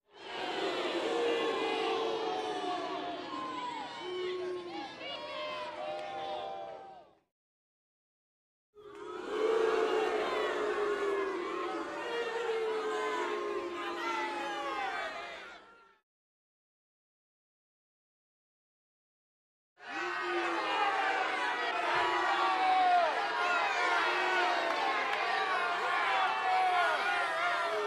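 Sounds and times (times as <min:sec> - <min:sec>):
crowd of 100 booing and yelling: 0:00.2 - 0:07.2, 0:08.8 - 0:16.0, 0:19.8 - 0:27.8.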